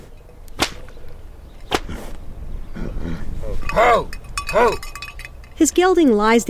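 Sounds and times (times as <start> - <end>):
outdoor hum: 0.0 - 6.4
long hand-woven whip cracking in the air: 0.5 - 1.0, 1.7 - 1.9
speech: 2.8 - 4.9, 5.6 - 6.4.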